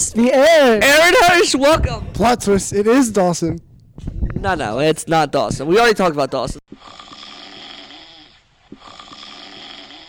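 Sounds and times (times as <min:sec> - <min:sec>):
speech: 0:00.1 - 0:07.0
loud rasping snore: 0:06.8 - 0:10.0.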